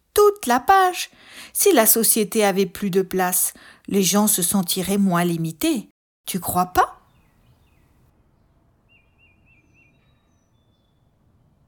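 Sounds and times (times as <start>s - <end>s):
speech: 0.3s - 7.0s
bird singing warbling whistled phrases: 7.0s - 11.6s.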